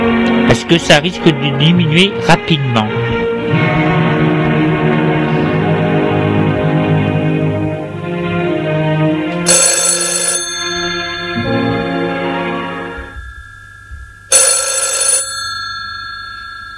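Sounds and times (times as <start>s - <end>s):
soft sustained musical backdrop: 0.0s - 14.3s
speech: 0.6s - 3.6s
telephone bell ringing: 9.5s - 16.7s.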